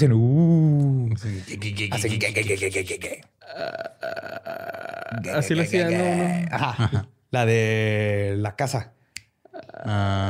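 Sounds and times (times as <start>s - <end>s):
speech: 0.0s - 0.6s, 1.2s - 9.0s, 9.8s - 10.2s
voice imitating a ghost's eerie night noise: 0.2s - 6.6s, 9.5s - 10.2s.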